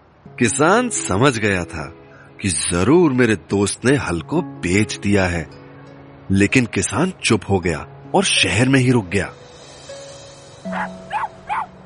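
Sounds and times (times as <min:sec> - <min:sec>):
speech: 0:00.3 - 0:05.6, 0:06.3 - 0:09.4, 0:10.6 - 0:11.0
small city dog yapping: 0:10.7 - 0:11.7.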